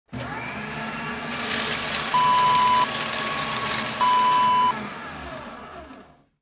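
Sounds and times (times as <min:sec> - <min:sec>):
paper shredder: 0:00.1 - 0:06.4.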